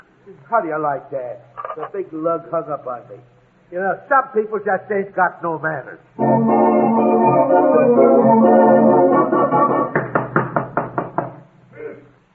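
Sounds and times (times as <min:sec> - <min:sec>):
speech: 0:00.3 - 0:09.4
tonal music: 0:06.2 - 0:10.4
knocking on a door: 0:09.9 - 0:11.4.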